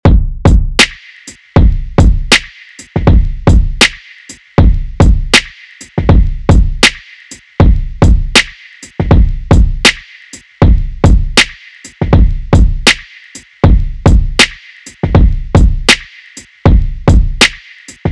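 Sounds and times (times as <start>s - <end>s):
drums: 0.0s - 18.1s.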